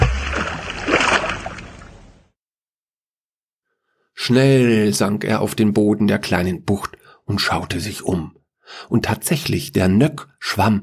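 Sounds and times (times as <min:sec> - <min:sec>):
water splashing as a man jumps into a fjord: 0:00.0 - 0:02.2
speech: 0:04.3 - 0:10.8.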